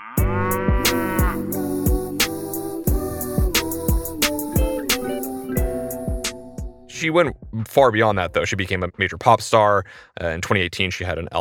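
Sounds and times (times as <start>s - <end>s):
female singer drawling moo-like notes mimicking a cow: 0.0s - 6.9s
bouncy pop beat with punchy drum hits and bright synth chords: 0.2s - 7.6s
speech: 7.0s - 11.4s.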